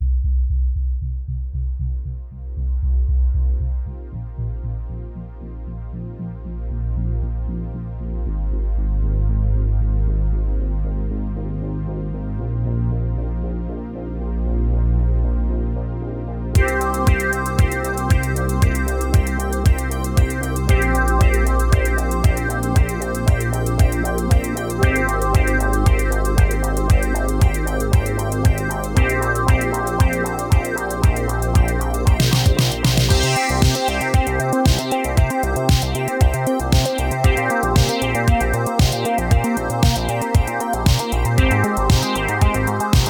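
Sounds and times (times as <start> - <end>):
bass arpeggio mix: 0.0 - 43.0.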